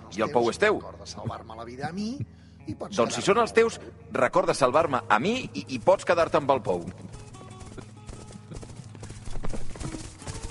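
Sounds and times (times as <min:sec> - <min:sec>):
speech: 0:00.2 - 0:07.2
hoofbeats of several horses galloping: 0:04.7 - 0:10.4.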